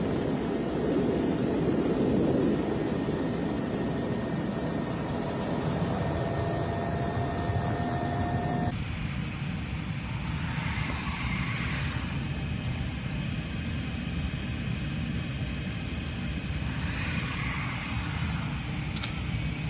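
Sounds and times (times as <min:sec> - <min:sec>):
helicopter flying with rotor thrum and engine whine: 0:00.0 - 0:19.6.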